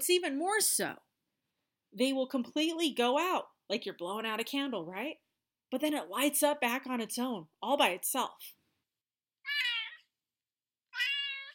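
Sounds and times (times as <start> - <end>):
speech: 0.0 - 1.1, 1.9 - 8.6
cat meowing: 9.4 - 10.1, 10.9 - 11.5.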